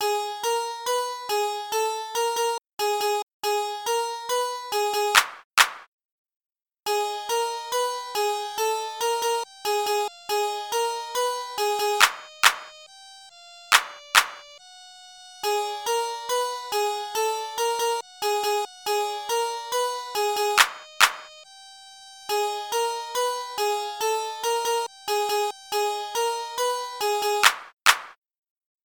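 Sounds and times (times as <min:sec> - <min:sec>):
SNES style dungeon game music beat: 0:00.0 - 0:05.4, 0:06.9 - 0:27.7.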